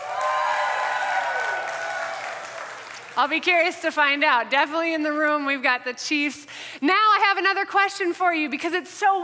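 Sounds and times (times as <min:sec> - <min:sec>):
small crowd in a room cheering: 0:00.0 - 0:03.2
steady wash of applause: 0:00.0 - 0:03.6
speech: 0:03.2 - 0:09.2.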